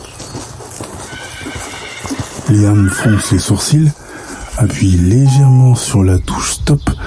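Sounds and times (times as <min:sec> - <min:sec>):
several horses galloping on soft ground in an enclosure: 0:00.0 - 0:05.9
horse whinnying: 0:01.0 - 0:05.6
speech: 0:02.5 - 0:04.0, 0:04.6 - 0:07.0.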